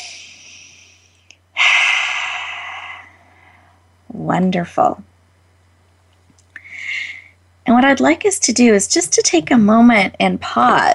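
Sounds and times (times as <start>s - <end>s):
deep breath in: 1.6s - 3.8s
speech: 4.2s - 5.1s, 7.8s - 10.9s.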